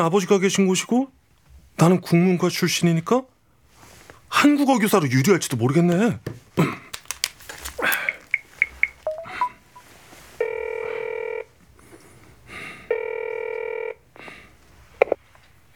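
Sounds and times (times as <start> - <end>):
speech: 0.0 - 1.2, 1.8 - 3.3, 4.3 - 6.8
keypad beeps from dialing: 8.3 - 9.9
phone line ringing with electronic buzzing tones: 8.4 - 11.5, 12.9 - 14.0.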